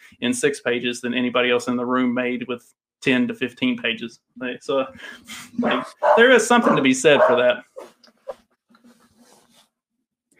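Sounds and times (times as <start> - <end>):
speech: 0.2 - 8.0
dog barking: 5.6 - 7.9.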